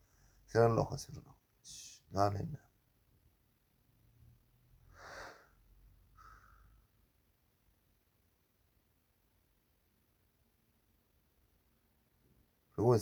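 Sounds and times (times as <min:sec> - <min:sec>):
speech: 0:00.5 - 0:02.7, 0:12.8 - 0:12.9
soft airy breath during meditation: 0:04.8 - 0:07.0
sharp breathy exhale through the nose during meditation: 0:04.9 - 0:06.8.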